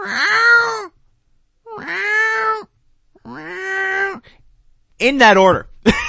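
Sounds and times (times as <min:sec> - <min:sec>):
person imitating a cat meow: 0:00.0 - 0:00.9, 0:01.7 - 0:04.2
speech: 0:05.0 - 0:06.0.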